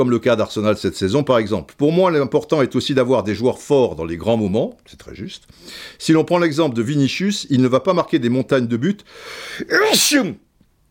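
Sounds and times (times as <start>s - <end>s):
speech: 0.0s - 10.5s
person sneezing: 9.3s - 10.4s.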